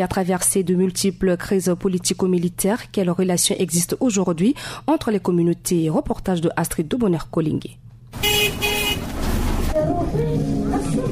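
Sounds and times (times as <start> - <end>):
speech: 0.0 - 8.3
busy street traffic rumbling: 6.1 - 11.1
car horns tooting: 8.1 - 9.5.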